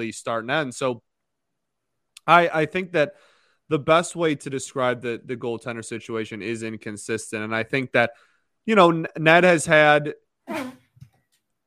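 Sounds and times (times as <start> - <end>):
speech: 0.0 - 1.1, 2.2 - 10.8
loud forceful sneeze with a trumpeting tail: 10.5 - 11.0.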